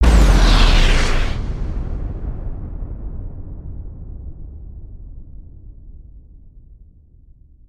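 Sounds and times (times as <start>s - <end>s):
tornado wind blast: 0.0s - 3.6s.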